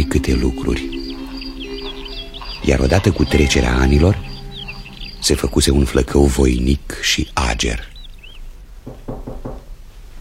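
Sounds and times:
speech: 0.2s - 1.0s, 2.6s - 4.3s, 5.2s - 7.9s
dull knocks on a door: 8.8s - 9.7s.

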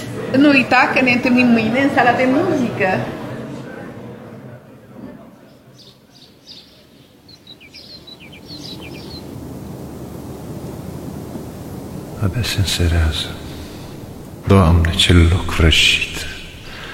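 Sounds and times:
speech: 0.3s - 3.2s, 12.4s - 13.4s, 14.5s - 16.3s
small birds chirping: 5.4s - 16.9s
gentle breeze rustling leaves: 5.9s - 16.9s.

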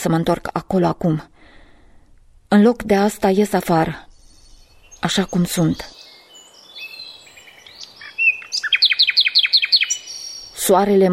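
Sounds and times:
speech: 0.0s - 1.3s, 2.5s - 4.1s, 5.0s - 6.0s, 10.7s - 11.1s
thin whistled bird notes in a small park in spring: 5.8s - 10.6s.

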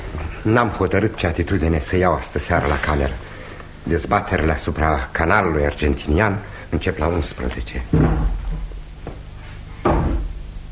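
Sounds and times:
speech: 0.4s - 8.6s
chair toppling over in adjacent room: 7.9s - 9.2s, 9.8s - 10.4s.

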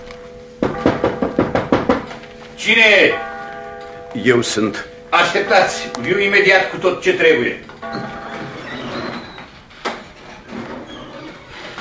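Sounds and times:
firm knocking on a wooden door: 0.6s - 2.1s
speech: 2.6s - 3.3s, 4.1s - 8.1s.

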